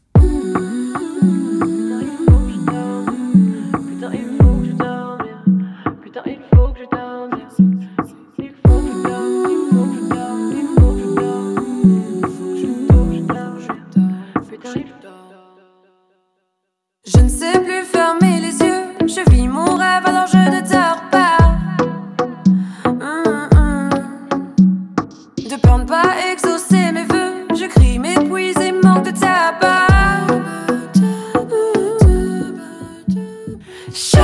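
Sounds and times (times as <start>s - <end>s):
punchy kick drums: 0.2s - 0.4s, 2.3s - 2.6s, 4.4s - 4.7s, 6.6s - 6.8s, 8.7s - 8.9s, 10.8s - 11.1s, 12.9s - 13.2s, 17.2s - 17.4s, 19.3s - 19.5s, 21.4s - 21.7s, 23.5s - 23.8s, 25.6s - 25.9s, 27.8s - 28.0s, 29.9s - 30.2s, 32.0s - 32.3s
electronic rap track with African music influences: 0.2s - 15.2s, 17.1s - 24.6s, 25.4s - 33.2s, 34.0s - 34.2s.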